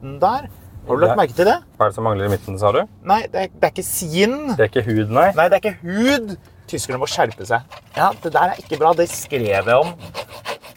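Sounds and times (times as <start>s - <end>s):
speech: 0.0s - 10.4s
fingernails scratching hard plastic steering wheel cover: 6.9s - 10.7s.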